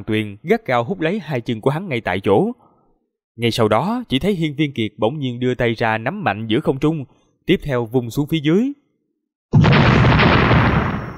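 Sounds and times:
speech: 0.0 - 2.6, 3.4 - 8.8
loud explosion: 9.6 - 11.1.

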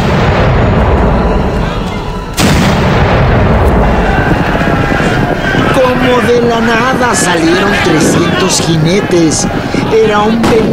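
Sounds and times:
cannon shots fired as a signal for an attack in a revolutionary-era battle: 0.0 - 4.9
rumbling roar of battle noise: 0.0 - 10.7
speech: 6.3 - 10.7.

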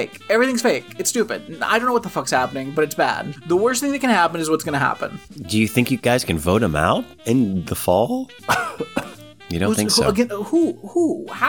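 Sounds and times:
speech: 0.0 - 11.4
person clearing throat: 8.5 - 9.2
person coughing: 8.5 - 9.2.

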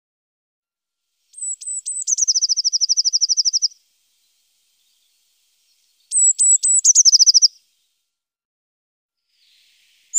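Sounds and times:
Eurasian blue tit trilling song: 1.4 - 7.6, 9.4 - 10.1.

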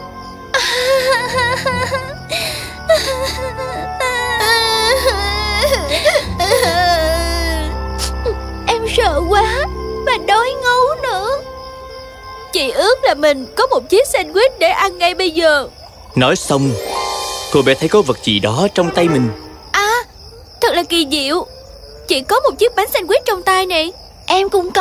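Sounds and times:
young girls crying in the grass: 0.5 - 11.9
speech: 1.2 - 3.1, 12.6 - 16.9, 17.5 - 19.4, 20.8 - 24.7.

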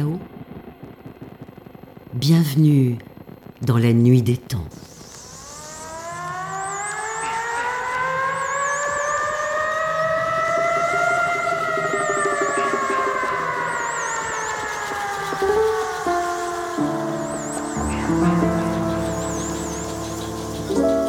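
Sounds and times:
speech: 2.2 - 4.9
loud wailing siren: 5.1 - 21.0
thinner higher warbling tone: 10.4 - 21.0.

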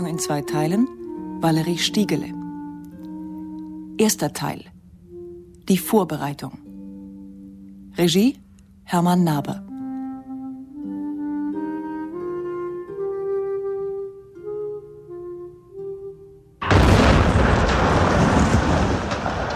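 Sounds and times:
speech: 0.0 - 2.4, 4.0 - 4.8, 5.7 - 6.6, 8.0 - 9.6
sustained musical tones: 0.0 - 16.6
bomb exploding inside a house: 16.6 - 19.5.

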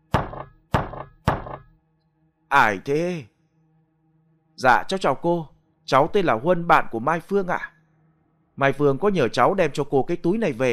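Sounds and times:
gentle knocking on the wooden door of a thatched-roof house: 0.1 - 1.7
speech: 2.5 - 3.3, 4.6 - 7.7, 8.6 - 10.7.

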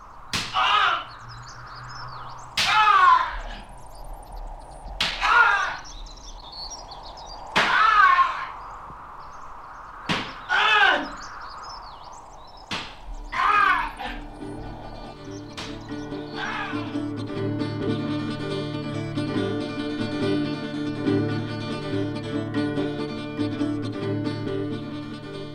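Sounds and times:
whip lashing during a flogging: 0.3 - 0.8, 2.6 - 3.0, 5.0 - 5.6, 7.6 - 8.0, 10.0 - 10.5, 12.7 - 13.6, 15.6 - 15.8
pained cry of a flogged general: 7.6 - 8.6, 10.5 - 11.2, 13.3 - 15.3, 16.2 - 17.1
music: 15.1 - 25.5.

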